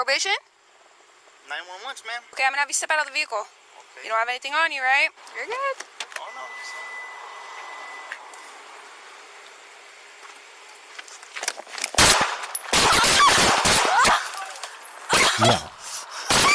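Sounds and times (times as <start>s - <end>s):
speech: 0.0s - 0.5s, 1.5s - 5.9s, 15.4s - 15.7s
gunshots fired during a police traffic stop: 12.0s - 14.4s, 16.3s - 16.5s.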